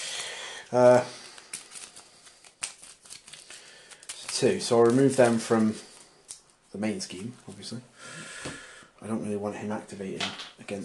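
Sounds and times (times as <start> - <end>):
speech: 0.7 - 1.2, 4.4 - 5.9, 6.8 - 10.8
encounter deck of cards shuffled in a card game: 0.8 - 7.7.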